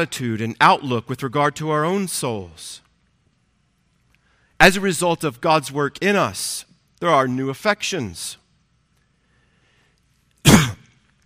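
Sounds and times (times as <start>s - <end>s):
speech: 0.0s - 2.8s, 4.6s - 8.4s
short rough cough or throat-clearing: 10.4s - 11.0s.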